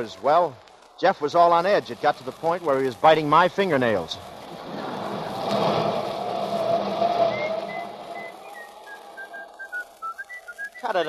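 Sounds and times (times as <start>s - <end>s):
speech: 0.0s - 4.3s, 10.9s - 11.0s
steady rumbling background: 4.0s - 10.1s
person whistling a tune: 7.3s - 11.0s.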